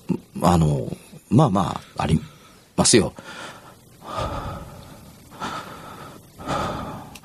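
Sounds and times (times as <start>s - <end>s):
speech: 0.4s - 3.5s
voice imitating heavy slow breathing: 2.4s - 7.2s.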